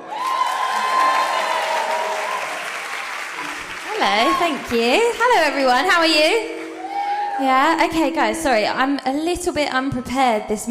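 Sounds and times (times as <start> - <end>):
sizable audience applauding: 0.0 - 5.6
audience cheers and whoops: 0.0 - 5.8, 6.4 - 7.8
speech: 4.0 - 6.6, 7.4 - 10.7.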